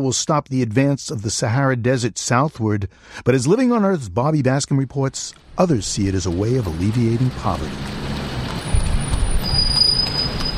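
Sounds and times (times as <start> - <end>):
speech: 0.0 - 8.1
rumble of car engines on a main street of Dakar Senegal: 5.2 - 10.5
thin high-pitched squeal: 8.6 - 10.5.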